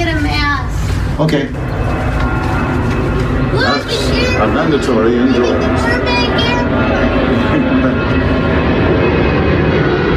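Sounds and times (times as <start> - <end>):
airplane flying overhead with whining engine: 0.0 - 10.1
speech: 1.2 - 1.7, 4.4 - 6.9.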